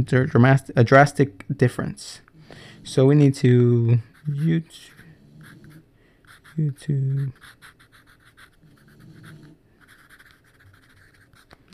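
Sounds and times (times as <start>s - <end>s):
speech: 0.0s - 5.0s, 6.6s - 7.8s
pencil writing on paper: 4.1s - 11.7s.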